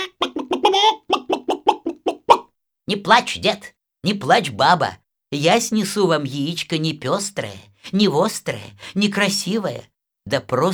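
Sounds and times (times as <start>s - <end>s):
hen clucking: 0.0s - 2.5s
speech: 2.9s - 10.7s.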